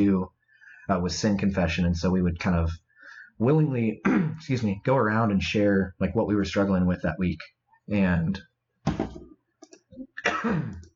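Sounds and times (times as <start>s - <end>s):
speech: 0.9s - 2.8s, 3.4s - 9.2s, 9.9s - 10.9s
person coughing: 4.0s - 4.4s, 10.2s - 10.9s.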